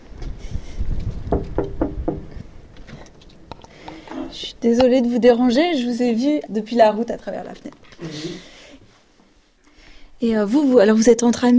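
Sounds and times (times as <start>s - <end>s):
firm knocks on a wooden house door: 1.3s - 2.5s
speech: 4.6s - 8.2s, 10.2s - 11.5s.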